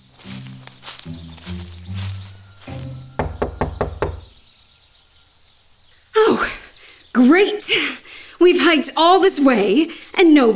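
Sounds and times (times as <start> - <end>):
knocking on a door: 3.2 - 4.3
speech: 7.2 - 10.5.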